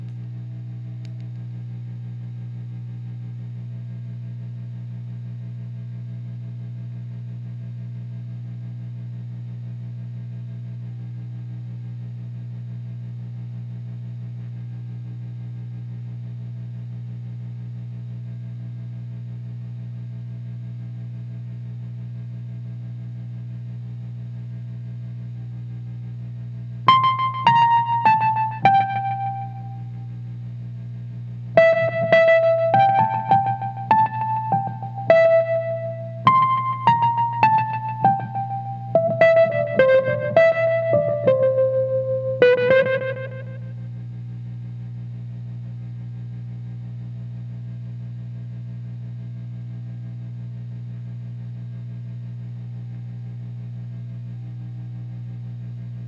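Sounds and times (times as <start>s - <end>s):
Wurlitzer electric piano: 26.9s - 30.0s, 31.6s - 43.7s.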